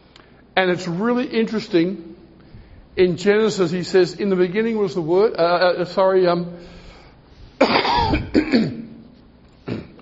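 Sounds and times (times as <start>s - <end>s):
speech: 0.6s - 2.1s, 3.0s - 6.8s, 8.5s - 8.7s
person clearing throat: 7.6s - 9.0s, 9.6s - 9.9s
person coughing: 7.6s - 9.0s, 9.6s - 9.9s.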